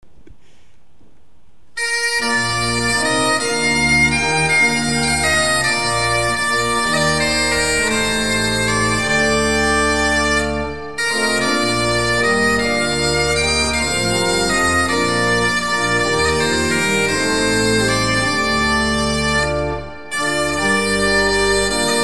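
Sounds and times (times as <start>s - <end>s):
pipe organs with bombarde stop: 1.8s - 22.0s.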